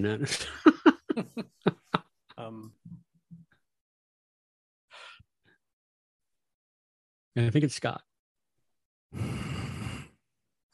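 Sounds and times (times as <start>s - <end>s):
speech: 0.0s - 1.5s, 7.4s - 8.1s
laughter: 0.2s - 2.0s
loud whistling nose breathing into microphone: 9.2s - 10.2s.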